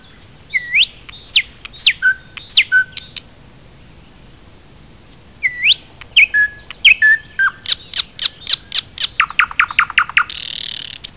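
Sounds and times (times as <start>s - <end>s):
Luscinia luscinia thrush nightingale: 0.0s - 11.1s.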